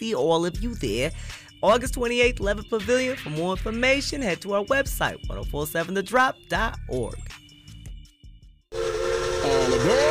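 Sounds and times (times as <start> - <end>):
speech: 0.0 - 7.4
steam train whistle blowing a sustained chord: 8.8 - 10.0.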